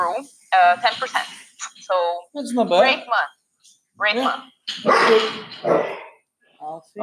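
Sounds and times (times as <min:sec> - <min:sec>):
speech: 0:00.0 - 0:06.0, 0:06.6 - 0:07.0
dog barking: 0:04.8 - 0:06.1.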